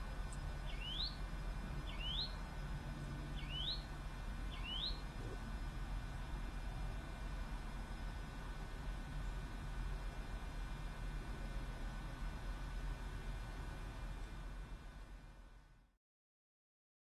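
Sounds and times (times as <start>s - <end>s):
continuous low rumbling background noise: 0.0s - 16.0s
upward-sweeping bird call: 0.7s - 1.2s, 1.9s - 2.4s, 3.4s - 3.8s, 4.5s - 5.0s.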